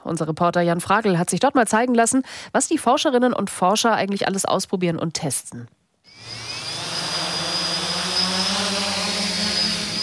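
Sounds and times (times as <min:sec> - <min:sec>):
speech: 0:00.0 - 0:06.4
two drone rotors whirring in a cage: 0:06.1 - 0:10.0.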